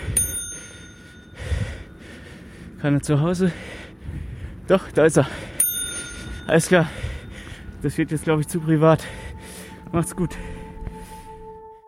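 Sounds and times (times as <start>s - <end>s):
bell ringing: 0.1s - 1.4s, 5.6s - 7.0s
speech: 2.8s - 3.8s, 4.7s - 5.5s, 6.5s - 7.1s, 7.8s - 9.2s, 9.9s - 10.5s.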